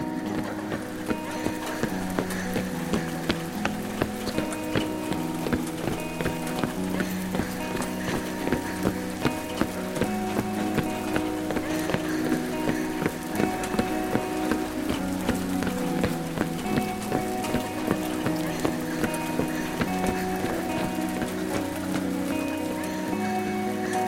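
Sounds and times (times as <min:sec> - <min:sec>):
rain falling: 0:00.0 - 0:24.0.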